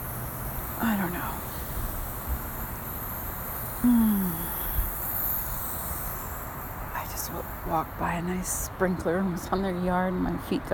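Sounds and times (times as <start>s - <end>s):
night crickets chirping faintly: 0.0s - 8.4s
soft outdoor hiss: 0.0s - 10.7s
speech: 0.8s - 1.5s, 3.8s - 4.6s, 7.3s - 10.7s.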